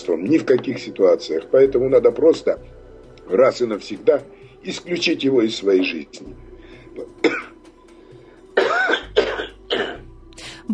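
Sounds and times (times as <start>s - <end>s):
speech: 0.0s - 7.4s
rough throaty hacking cough: 7.0s - 7.6s, 8.6s - 10.1s.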